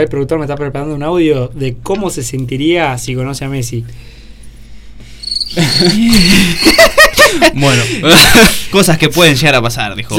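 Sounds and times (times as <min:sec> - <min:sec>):
speech: 0:00.0 - 0:04.2, 0:05.4 - 0:10.1
crickets chirping at night: 0:05.2 - 0:07.2
laughter: 0:05.5 - 0:08.7.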